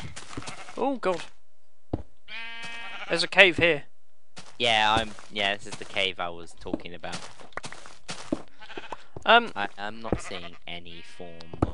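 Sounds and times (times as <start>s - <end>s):
sheep bleating: 0.0s - 0.8s, 2.3s - 3.3s, 8.5s - 9.1s, 10.0s - 11.7s
speech: 0.8s - 1.4s, 3.1s - 3.9s, 4.6s - 7.5s, 9.2s - 11.7s.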